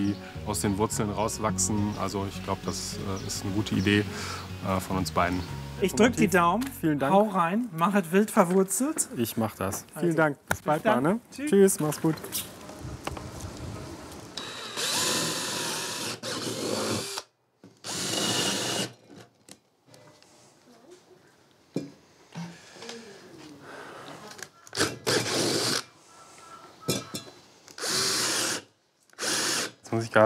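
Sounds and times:
speech: 0:00.0 - 0:12.6
power drill boring holes to hold test tubes: 0:14.4 - 0:19.0, 0:24.7 - 0:25.9, 0:27.8 - 0:29.8.

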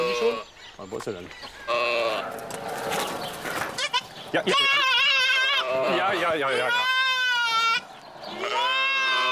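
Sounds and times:
young goat kid bleating for its mother: 0:00.0 - 0:00.4, 0:03.8 - 0:07.8, 0:08.4 - 0:09.3
speech: 0:00.3 - 0:03.0, 0:04.3 - 0:05.0, 0:05.7 - 0:07.0.

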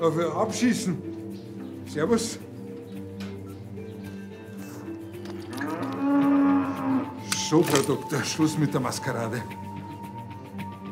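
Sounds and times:
speech: 0:00.0 - 0:01.2, 0:01.9 - 0:02.5, 0:07.5 - 0:09.7
cow mooing during a difficult calving: 0:05.5 - 0:07.2.

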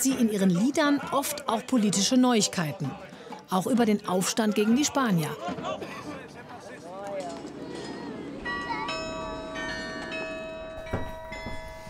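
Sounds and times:
speech: 0:00.0 - 0:06.1
murmur of people: 0:00.0 - 0:10.6
outdoor bustle: 0:00.0 - 0:11.8
carillon bells ringing in a bell tower: 0:08.4 - 0:11.8.

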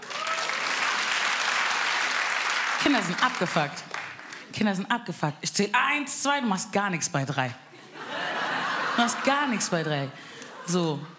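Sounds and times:
audience applause at a comedy show: 0:00.0 - 0:04.4
speech: 0:02.9 - 0:03.9, 0:04.5 - 0:07.6, 0:09.0 - 0:11.1
laughter: 0:07.8 - 0:11.1.

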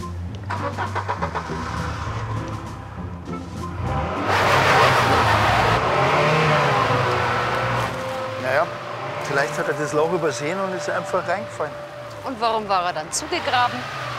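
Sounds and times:
car engine cranking, starting and revving: 0:00.0 - 0:14.1
speech: 0:00.6 - 0:01.0, 0:09.6 - 0:14.0.

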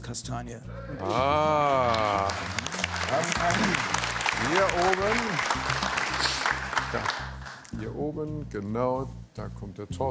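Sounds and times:
speech: 0:00.1 - 0:10.0
audience applause: 0:01.0 - 0:07.7.

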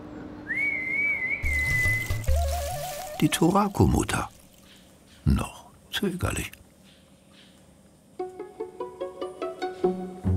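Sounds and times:
animal keeper whistling to call an animal: 0:00.5 - 0:02.2
water splashing: 0:01.4 - 0:04.9
speech: 0:03.2 - 0:04.4, 0:05.2 - 0:06.6.

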